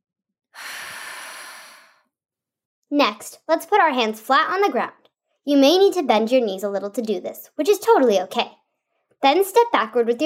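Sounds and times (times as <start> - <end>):
slow breath in and out during a yoga forward-fold stretch: 0.5 - 2.2
speech: 2.9 - 8.6, 9.2 - 10.2.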